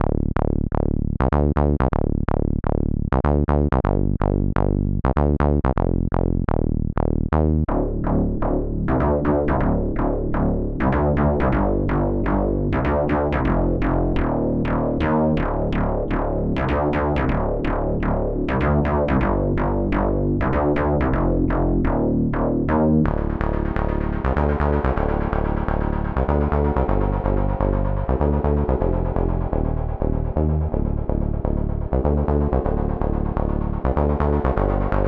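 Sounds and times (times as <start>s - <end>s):
saw bass synth: 0.0s - 35.0s.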